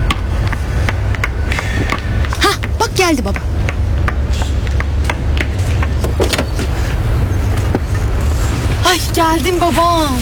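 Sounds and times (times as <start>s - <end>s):
car engine idling: 0.0s - 9.3s
speech: 3.1s - 3.5s, 9.2s - 10.1s
sharp clicks and knocks: 4.8s - 6.7s.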